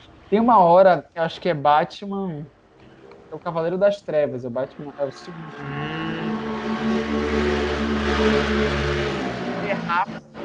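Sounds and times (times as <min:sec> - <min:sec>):
speech: 0:00.3 - 0:02.6, 0:03.3 - 0:06.0, 0:06.9 - 0:09.0
motorcycle engine revving with throaty roar: 0:05.0 - 0:10.4.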